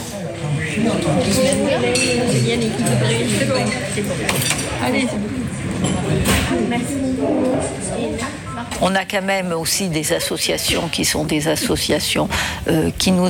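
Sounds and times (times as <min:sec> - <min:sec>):
murmur of many people chatting in a crowded café: 0:00.0 - 0:13.2
speech: 0:00.2 - 0:13.2
dishes and cutlery clinking in a busy café: 0:01.0 - 0:06.6.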